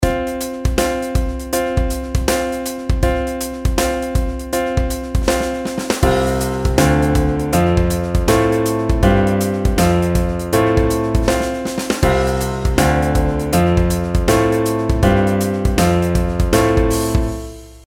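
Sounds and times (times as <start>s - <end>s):
melody with skipwise pitch patterns: 0.0s - 17.8s.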